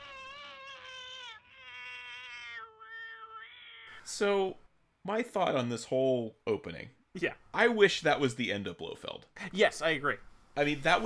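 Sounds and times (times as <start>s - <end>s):
cat wailing scream: 0.0s - 4.0s
speech: 4.0s - 11.0s.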